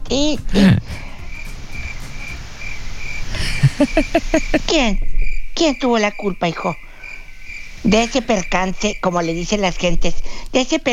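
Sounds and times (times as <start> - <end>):
low rumbling background: 0.0 - 9.6
crickets chirping: 0.0 - 10.9
speech: 0.1 - 1.0, 3.8 - 6.8, 7.8 - 10.9
laughter: 0.4 - 2.5, 3.3 - 4.8.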